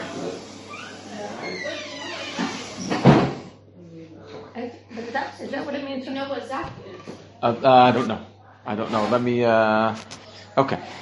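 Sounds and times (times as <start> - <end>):
door swinging with creaky scraping: 0.0 - 3.5
door shutting with a thud: 2.0 - 3.5
speech: 5.2 - 10.9.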